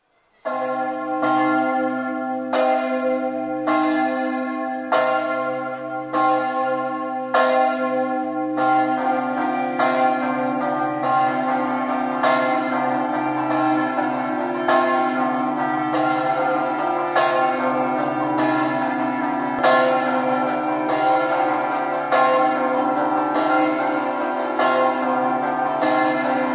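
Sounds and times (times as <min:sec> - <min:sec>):
bells ringing: 0:00.4 - 0:26.5.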